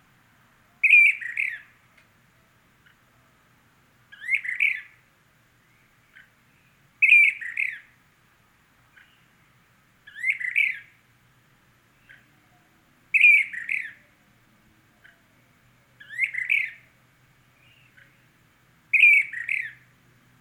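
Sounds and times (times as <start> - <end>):
brown-crested flycatcher Myiarchus tyrannulus magister calling a rolling double-noted rasp: 0.8 - 1.8, 4.1 - 5.0, 7.0 - 8.0, 10.1 - 11.0, 13.1 - 14.2, 16.0 - 17.0, 18.9 - 19.8.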